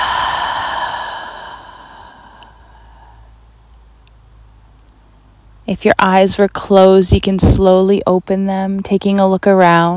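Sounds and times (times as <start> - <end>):
long deep breath exhaled through the mouth during a mindfulness meditation: 0.0 - 3.4
speech: 5.7 - 9.9.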